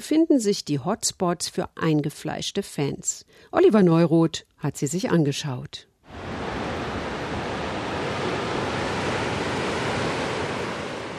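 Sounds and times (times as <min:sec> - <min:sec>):
speech: 0:00.0 - 0:06.3
faint rush of wind: 0:06.0 - 0:11.1
sea waves breaking on the coast by a small island in Spain: 0:06.0 - 0:11.1.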